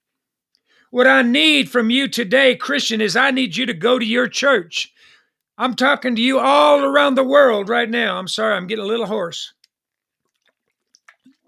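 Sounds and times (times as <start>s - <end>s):
speech: 0.9s - 9.6s
sipping and swallowing water: 9.5s - 11.4s
small wet mouth clicks and gulping: 9.6s - 11.4s.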